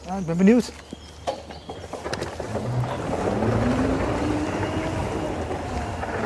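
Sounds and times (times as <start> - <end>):
speech: 0.1 - 1.0
small motorized unmanned ground vehicle rumbling and whining: 0.9 - 6.2
wind noise: 1.6 - 6.2.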